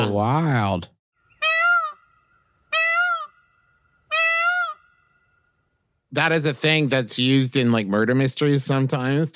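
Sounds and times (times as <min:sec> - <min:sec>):
speech: 0:00.1 - 0:01.0, 0:06.1 - 0:09.3
peacock giving loud piercing wailing calls: 0:01.2 - 0:05.7.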